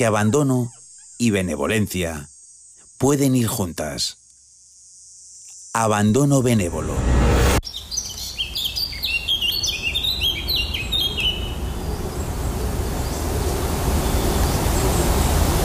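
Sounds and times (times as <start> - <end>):
speech: 0.0 - 2.3, 3.0 - 4.2, 5.8 - 7.2
birds chirping in a New England forest: 0.0 - 3.6, 7.6 - 15.6
ambient forest noise in New England, northeastern United States: 0.0 - 6.7, 7.7 - 15.6.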